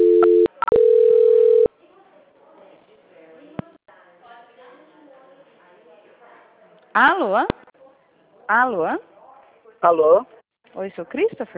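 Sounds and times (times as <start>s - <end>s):
telephone line tone during a call transfer: 0.0s - 1.7s
speech: 7.0s - 7.6s, 8.5s - 9.1s, 9.8s - 11.5s.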